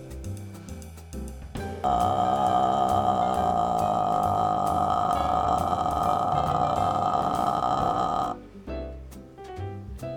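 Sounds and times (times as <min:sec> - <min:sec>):
speech: 0:01.8 - 0:02.5
amplified raw buzz of a person's vocal folds: 0:01.8 - 0:08.4.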